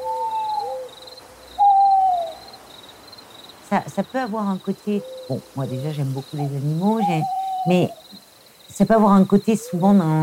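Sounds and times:
owl hooting at night: 0.0s - 2.6s, 4.8s - 8.2s
faint high insect-like chirping: 0.0s - 10.2s
speech: 3.7s - 8.2s, 8.8s - 10.2s.

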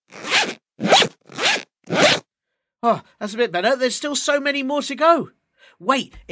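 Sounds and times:
zipper being unzipped: 0.1s - 2.2s
speech: 2.8s - 6.3s.

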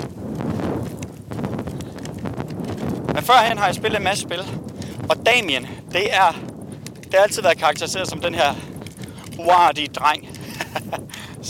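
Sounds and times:
wind buffeting the microphone: 0.0s - 11.4s
speech: 3.2s - 6.5s, 7.1s - 8.7s, 9.4s - 11.1s
laughter: 10.4s - 11.2s.

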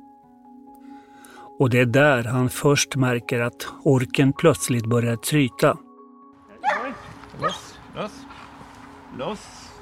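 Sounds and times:
speech: 1.6s - 5.8s, 7.4s - 8.3s, 9.2s - 9.7s
protection dogs barking during protection dog training: 6.6s - 8.4s.

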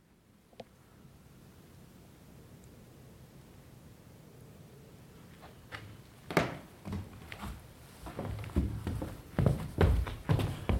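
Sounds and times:
soft hiss: 0.0s - 10.7s
footsteps on an old creaking wooden attic floor in Ekenäs Castle: 6.3s - 10.7s.

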